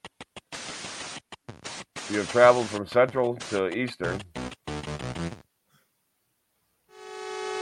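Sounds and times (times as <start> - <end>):
speech: 2.1 - 4.4
video game train horn: 6.9 - 7.5.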